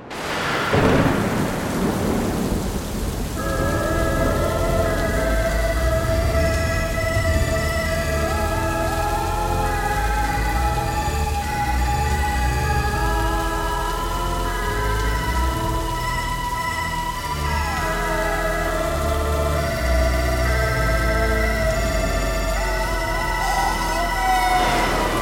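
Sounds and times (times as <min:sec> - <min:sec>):
sharp thunderclap: 0:00.0 - 0:04.8, 0:24.6 - 0:25.1
deep thunder rumbling: 0:00.0 - 0:14.0, 0:21.6 - 0:25.1
steady rainfall: 0:00.0 - 0:25.1
eerie sustained musical tones: 0:03.3 - 0:25.1.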